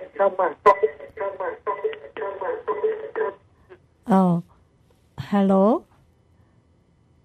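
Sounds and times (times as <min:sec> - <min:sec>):
music from a radio over a phone line: 0:00.0 - 0:03.4
radio playing in background over a phone line: 0:00.0 - 0:03.8
speech: 0:00.2 - 0:00.8, 0:04.1 - 0:04.5, 0:05.3 - 0:05.9.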